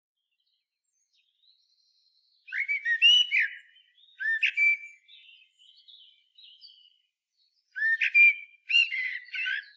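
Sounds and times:
common blackbird Turdus merula liquid slurred whistles: 2.5 - 5.1, 7.8 - 9.7.

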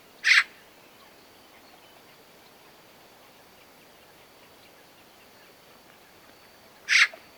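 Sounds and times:
Eurasian magpie Pica pica calling: 0.2 - 0.5, 6.9 - 7.2.

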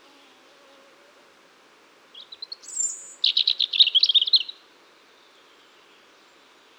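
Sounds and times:
European robin Erithacus rubecula singing: 2.2 - 4.6.

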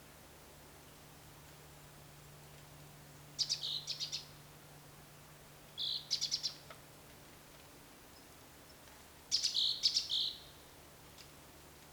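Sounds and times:
great tit Parus major calls: 3.4 - 4.3, 9.3 - 10.4.

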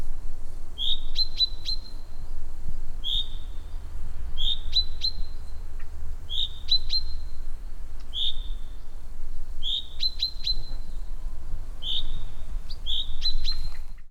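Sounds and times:
common chaffinch Fringilla coelebs calling: 0.8 - 2.1, 3.0 - 3.8, 4.4 - 7.5, 8.1 - 8.9, 9.6 - 11.2, 11.8 - 14.0.

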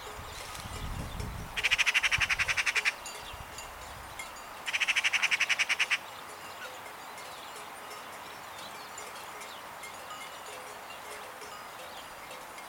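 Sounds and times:
Eurasian magpie Pica pica chattering: 1.6 - 3.0, 4.7 - 6.0.

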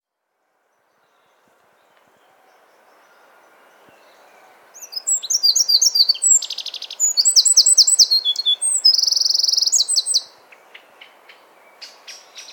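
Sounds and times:
Eurasian wren Troglodytes troglodytes song with high trills: 0.6 - 12.5.

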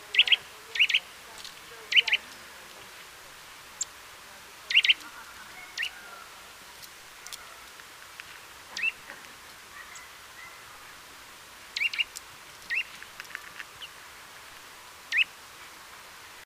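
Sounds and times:
Eurasian nuthatch Sitta europaea calls: 0.0 - 1.2, 1.8 - 2.4, 4.6 - 6.4, 8.7 - 11.0, 11.7 - 14.0, 15.1 - 15.3.

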